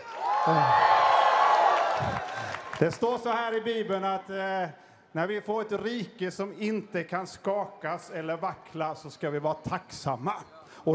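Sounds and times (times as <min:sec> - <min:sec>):
crowd of many voices cheering and whooping: 0:00.0 - 0:02.8
speech: 0:00.4 - 0:00.9, 0:02.0 - 0:10.9.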